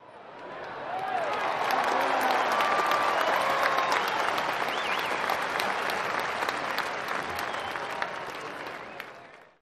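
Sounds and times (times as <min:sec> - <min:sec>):
large crowd applause: 0:00.4 - 0:09.5
whistling: 0:03.1 - 0:05.4, 0:07.2 - 0:09.5.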